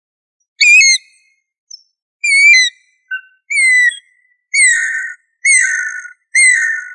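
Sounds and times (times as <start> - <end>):
bird singing whistled notes: 0.4 - 6.9.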